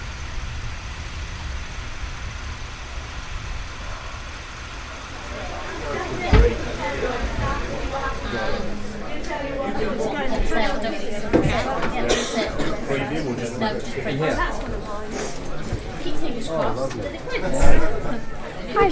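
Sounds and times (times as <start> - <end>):
car engine rumbling: 0.0 - 9.2
voices murmuring: 4.7 - 18.9
sharp thump: 6.3 - 6.8
speech: 16.5 - 18.9.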